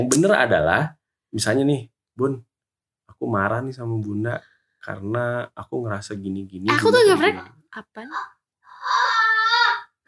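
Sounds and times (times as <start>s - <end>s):
speech: 0.0s - 2.5s, 3.2s - 9.1s
child moaning in pain while sleep-talking: 8.7s - 10.0s.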